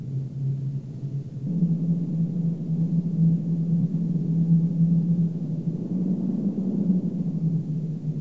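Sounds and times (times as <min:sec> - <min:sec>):
wind howling: 0:01.4 - 0:08.1.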